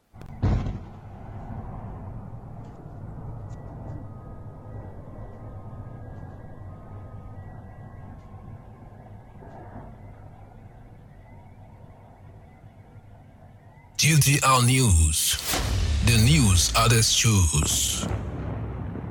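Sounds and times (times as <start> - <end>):
speech: 14.0 - 18.3
explosion booming over a city: 15.4 - 19.0.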